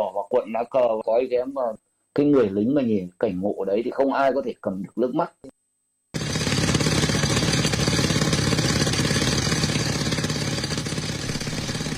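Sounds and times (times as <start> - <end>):
speech: 0.2 - 5.6
concrete drill hammering rock, breaking large rocks: 6.2 - 11.9.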